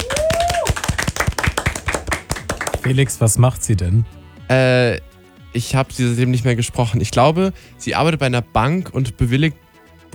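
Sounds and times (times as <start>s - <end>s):
hand clapping as applause: 0.0s - 3.2s
speech: 2.9s - 10.1s.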